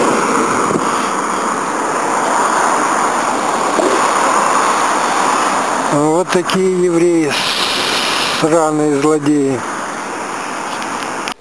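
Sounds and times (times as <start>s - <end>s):
faint surf wash: 0.0s - 11.3s
wind roaring along an open ocean shoreline: 0.0s - 11.3s
speech: 6.2s - 7.6s, 8.4s - 9.7s.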